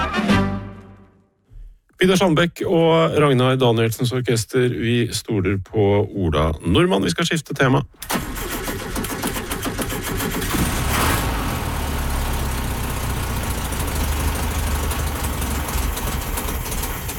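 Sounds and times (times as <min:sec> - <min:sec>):
speech: 0:02.0 - 0:08.4
1970 Volkswagen Beetle engine idling: 0:08.1 - 0:17.1.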